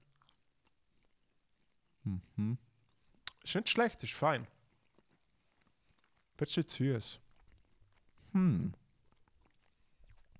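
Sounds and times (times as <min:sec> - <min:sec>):
person chewing food: 0:00.0 - 0:02.0, 0:02.7 - 0:03.5, 0:04.6 - 0:10.3
short voiced hum: 0:02.1 - 0:02.6
speech: 0:02.1 - 0:02.7, 0:03.4 - 0:04.6, 0:06.4 - 0:07.2, 0:08.3 - 0:08.8.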